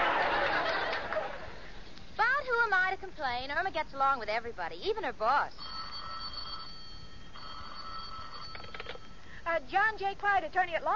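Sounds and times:
laughter: 0:00.0 - 0:01.7
soft hiss: 0:00.0 - 0:10.9
speech: 0:02.7 - 0:05.6, 0:09.5 - 0:10.9
telephone ringing: 0:05.6 - 0:09.4.

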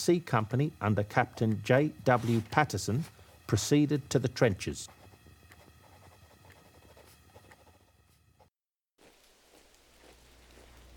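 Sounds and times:
speech: 0:00.0 - 0:05.0
freezing rain and sleet pattering densely on a surface: 0:09.0 - 0:10.9.

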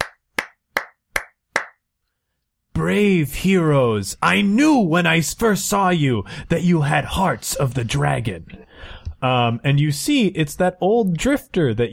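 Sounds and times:
slow hand clapping: 0:00.0 - 0:01.8
speech: 0:02.8 - 0:11.9.

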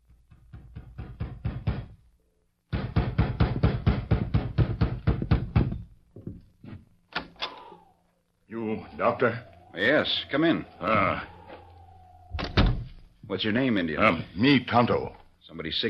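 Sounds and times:
knocking on a wooden door: 0:00.3 - 0:02.0, 0:02.7 - 0:06.4
speech: 0:09.0 - 0:11.4, 0:13.3 - 0:15.8.

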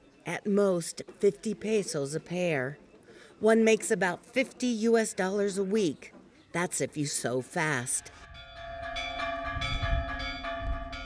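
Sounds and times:
speech: 0:00.2 - 0:02.8, 0:03.4 - 0:08.3
church bells ringing for evening mass: 0:08.1 - 0:11.0.

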